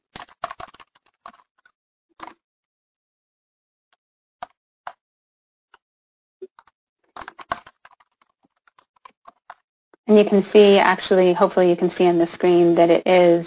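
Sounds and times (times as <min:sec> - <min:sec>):
typing on a computer keyboard: 0:00.1 - 0:02.4, 0:06.4 - 0:09.6
speech: 0:10.1 - 0:13.4.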